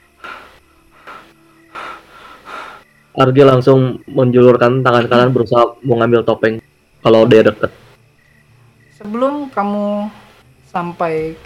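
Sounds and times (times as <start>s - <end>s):
heavy ragged panting breaths: 0.0s - 3.0s
speech: 3.2s - 7.8s, 9.0s - 11.4s.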